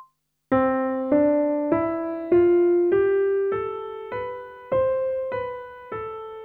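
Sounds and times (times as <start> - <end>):
pop vocals singing a one-octave major scale ascending and descending: 0.6 - 5.7.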